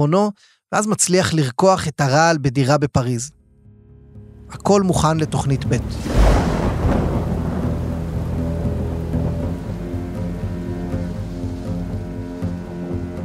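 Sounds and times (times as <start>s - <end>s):
speech: 0.0s - 3.4s, 4.5s - 6.2s
low rumbling storm drone with wind: 5.4s - 13.1s
loud thunderclap in a night storm: 5.8s - 10.4s
heavy rain in a night storm: 5.8s - 13.2s.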